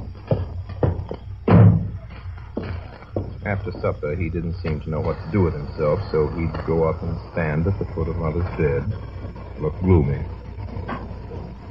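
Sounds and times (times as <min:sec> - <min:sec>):
light knocks and bumps: 0:00.0 - 0:03.9
door pushed shut: 0:01.4 - 0:02.0
speech: 0:03.5 - 0:10.4.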